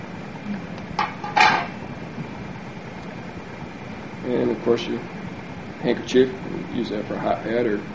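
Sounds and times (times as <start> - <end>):
small metal frying pan made from a battlefield canteen clanking: 1.0 - 1.7
speech: 4.3 - 5.2, 5.8 - 7.9.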